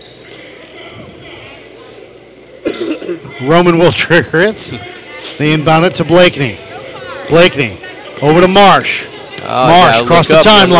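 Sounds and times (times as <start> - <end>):
faint murmur: 0.0 - 10.7
person coughing: 2.6 - 3.2
speech: 3.1 - 6.7, 7.3 - 10.7.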